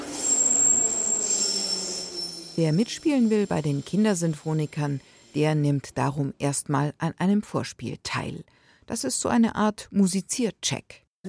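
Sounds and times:
train's braking wheels squealing: 0:00.0 - 0:05.4
speech: 0:02.6 - 0:11.2.

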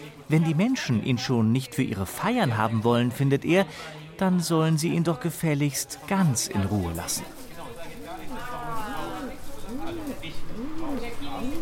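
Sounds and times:
speech: 0:00.3 - 0:07.4
pigeon cooing: 0:08.5 - 0:11.6.

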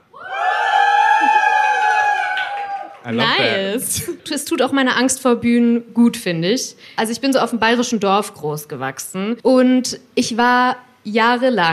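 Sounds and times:
live crowd cheering and whooping: 0:00.0 - 0:03.8
speech: 0:03.1 - 0:11.7.

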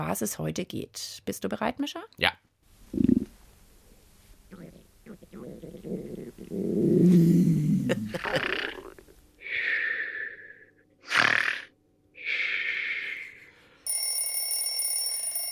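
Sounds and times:
speech: 0:00.0 - 0:03.0
low gurgling stomach growls: 0:02.9 - 0:03.4, 0:04.5 - 0:09.2
loud breathy snoring: 0:04.5 - 0:13.5
bright steady alarm clock ringing: 0:13.9 - 0:15.4.

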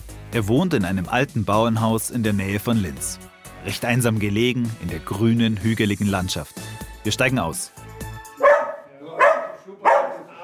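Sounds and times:
speech: 0:00.3 - 0:07.9
dog barking to greet visitors at an old farmhouse: 0:08.4 - 0:10.3.

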